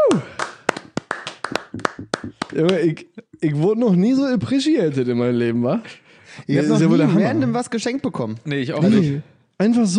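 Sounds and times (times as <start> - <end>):
couple of people clapping: 0.0 - 3.0
speech: 0.1 - 0.4, 2.6 - 9.9.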